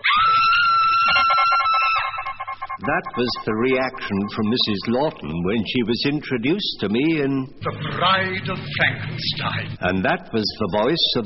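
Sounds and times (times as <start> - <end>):
woman's shrill scream from a horror film: 0.0 - 2.3
speech: 2.9 - 11.2.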